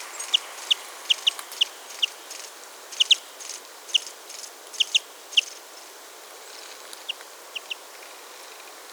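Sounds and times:
steady hiss: 0.0s - 8.9s
European greenfinch Chloris chloris chip calls: 0.2s - 5.6s.

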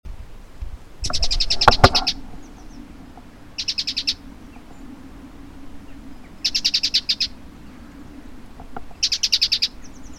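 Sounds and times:
Parus major great tit giving harsh chattering calls: 1.0s - 2.8s, 3.6s - 4.6s, 6.3s - 8.0s, 9.0s - 10.1s.

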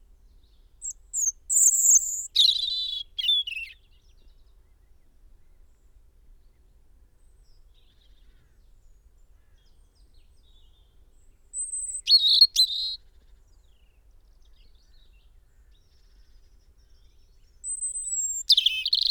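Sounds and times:
European robin song: 0.3s - 4.7s, 9.7s - 15.3s, 16.0s - 19.1s.

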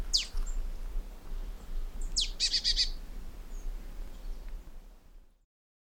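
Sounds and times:
marsh tit Poecile palustris calling: 0.1s - 0.6s, 2.0s - 4.4s.

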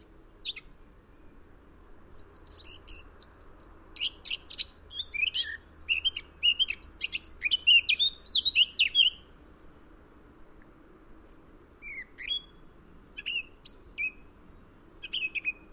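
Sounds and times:
Eurasian blackcap singing: 2.2s - 9.3s, 11.8s - 12.6s, 13.2s - 14.3s, 15.0s - 15.7s.

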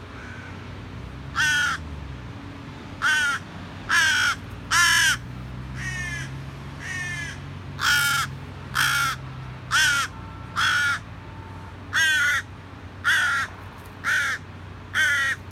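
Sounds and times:
carrion crow cawing: 0.2s - 0.6s, 1.4s - 1.8s, 3.0s - 5.2s, 5.8s - 11.1s, 11.9s - 15.4s.

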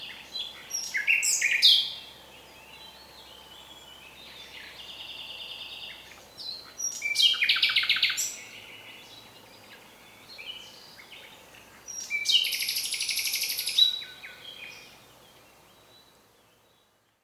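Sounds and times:
common nightingale Luscinia megarhynchos song: 0.0s - 17.2s.

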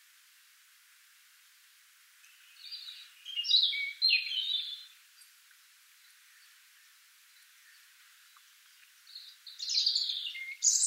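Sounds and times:
European robin Erithacus rubecula song phrase: 2.2s - 5.3s, 5.9s - 10.8s.

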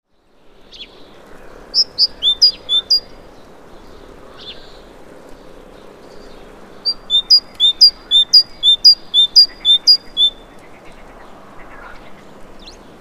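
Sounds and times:
great tit Parus major giving high clipped paired notes: 1.8s - 3.2s, 6.8s - 10.7s
great tit Parus major singing bright repeated phrases: 1.8s - 4.8s, 5.7s - 12.9s.

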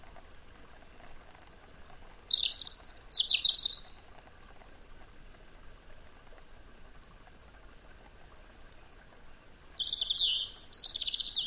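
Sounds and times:
European robin Erithacus rubecula song: 1.4s - 3.9s, 9.1s - 11.4s.

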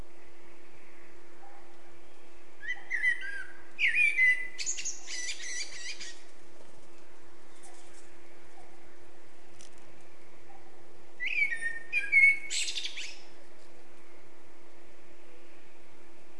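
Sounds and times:
faint hum: 0.0s - 16.3s
Eurasian blackbird Turdus merula singing: 0.9s - 6.3s, 10.6s - 13.3s.

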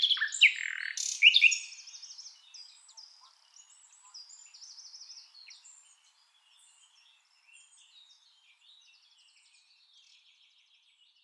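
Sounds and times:
Common nightingale Luscinia megarhynchos singing: 0.0s - 9.4s.

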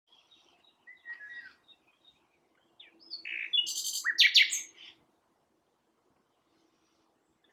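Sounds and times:
common nightingale Luscinia megarhynchos singing: 0.1s - 5.0s.

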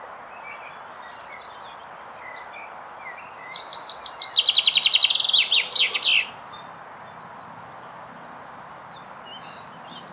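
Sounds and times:
common chaffinch Fringilla coelebs song: 2.9s - 6.6s.

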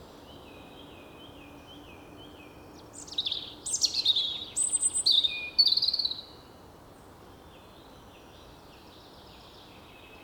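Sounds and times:
European robin Erithacus rubecula singing tinkling phrases with trills: 0.0s - 6.4s.

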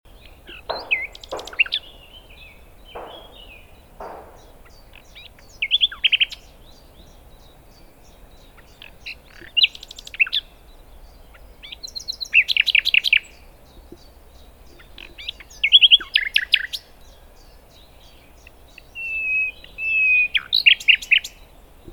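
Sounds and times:
common nightingale Luscinia megarhynchos in full song: 0.1s - 21.9s.

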